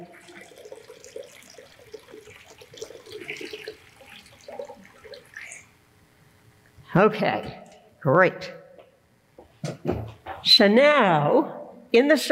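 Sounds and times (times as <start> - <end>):
water poured from a heavy pitcher into a bowl: 0.0 - 5.8
speech: 6.9 - 8.6, 10.6 - 12.3.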